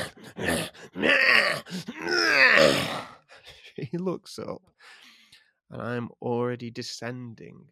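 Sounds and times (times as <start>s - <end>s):
voice imitating heavy groaning breaths: 0.0s - 3.4s
speech: 3.9s - 4.7s, 5.7s - 7.7s.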